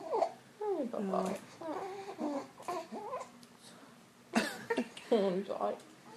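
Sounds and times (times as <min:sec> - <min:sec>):
fussy baby boy babbling and whimpering close to falling asleep: 0:00.0 - 0:03.4
speech: 0:00.8 - 0:02.3, 0:05.1 - 0:05.9.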